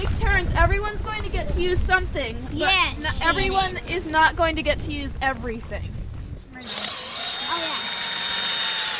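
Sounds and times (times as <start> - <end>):
speech: 0.2 - 6.0
power drill boring through tree bark to reach the phloem layer: 6.6 - 8.9.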